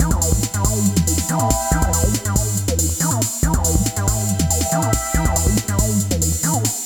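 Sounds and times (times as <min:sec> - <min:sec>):
techno music: 0:00.0 - 0:06.8.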